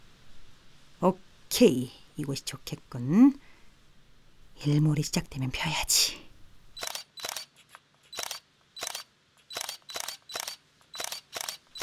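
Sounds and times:
speech: 1.0s - 3.5s, 4.6s - 6.2s, 6.8s - 7.0s
camera shutter clicking: 6.4s - 11.8s.

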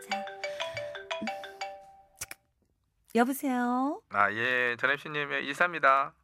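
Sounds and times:
phone ringtone with bright melodic electronic tones: 0.0s - 2.2s
speech: 3.1s - 6.2s.

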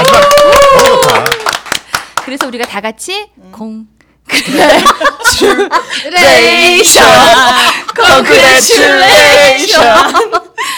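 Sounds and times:
hands clapping: 0.0s - 2.8s
speech: 2.3s - 10.7s
laughter: 4.3s - 10.7s.

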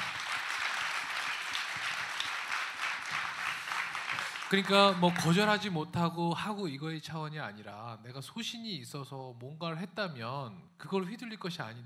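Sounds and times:
audience applause: 0.0s - 5.6s
speech: 4.5s - 11.8s.

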